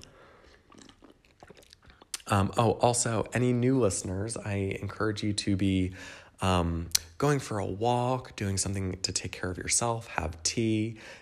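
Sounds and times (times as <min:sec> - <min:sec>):
person sipping tea: 0:00.0 - 0:02.3
speech: 0:02.3 - 0:11.2.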